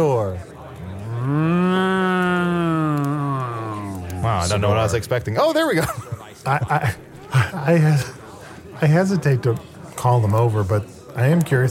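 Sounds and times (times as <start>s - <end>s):
cow mooing: 0.9s - 3.5s
speech: 4.5s - 8.2s, 8.8s - 11.6s
laughter: 5.6s - 8.5s.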